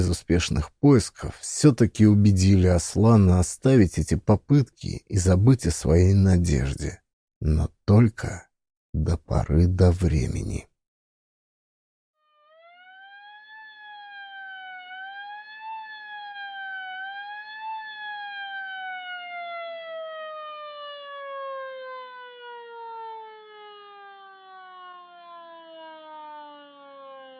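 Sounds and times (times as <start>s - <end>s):
speech: 0.0s - 10.7s
ambulance siren wailing in the evening: 12.4s - 27.3s.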